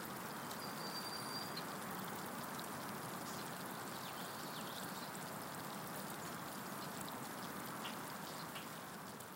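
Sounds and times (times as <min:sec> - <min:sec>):
river water flowing: 0:00.0 - 0:09.3.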